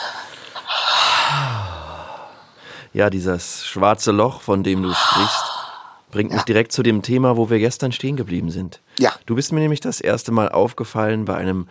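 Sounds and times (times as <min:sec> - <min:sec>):
slow deep breath in and long exhale: 0:00.0 - 0:03.0, 0:04.8 - 0:06.2
speech: 0:02.9 - 0:05.4, 0:06.1 - 0:11.6.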